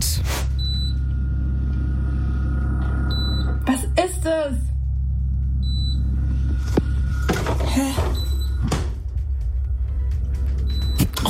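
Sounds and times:
steady appliance hum and low rumble: 0.0s - 10.9s
refrigerator open-door alarm high electronic beep: 0.5s - 3.7s, 5.6s - 6.4s, 8.1s - 8.7s, 10.6s - 11.2s.

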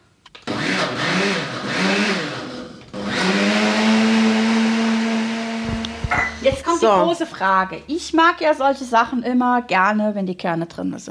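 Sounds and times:
blender puréeing preserved currants with apple juice: 0.4s - 6.7s
speech: 6.5s - 11.0s.

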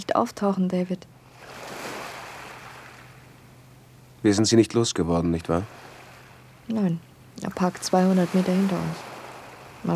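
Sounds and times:
speech: 0.1s - 1.2s, 4.2s - 5.9s, 6.7s - 9.1s
sea waves washing in a steady rush of surf: 1.2s - 3.4s, 5.4s - 6.6s, 7.5s - 9.9s.

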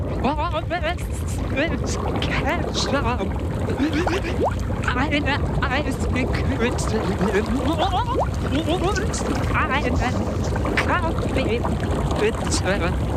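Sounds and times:
constant watery rumble: 0.0s - 13.1s
muffled speech spoken underwater: 0.0s - 13.1s.

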